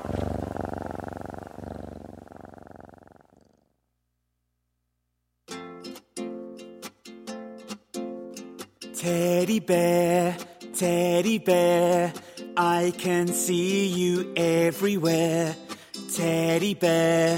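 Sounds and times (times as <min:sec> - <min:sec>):
cat purring: 0:00.0 - 0:03.8
speech: 0:09.0 - 0:15.6, 0:16.2 - 0:17.3.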